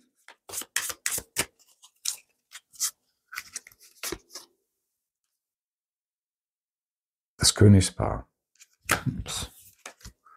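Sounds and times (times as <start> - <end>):
Lenormand cards being shuffled by hand: 0.2 - 4.5, 8.6 - 10.2
speech: 7.4 - 8.3, 9.0 - 9.5.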